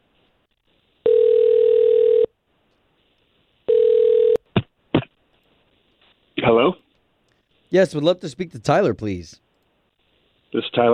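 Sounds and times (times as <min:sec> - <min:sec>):
telephone dial tone: 0:01.0 - 0:02.3, 0:03.7 - 0:04.4
speech: 0:07.7 - 0:09.4, 0:10.5 - 0:10.9.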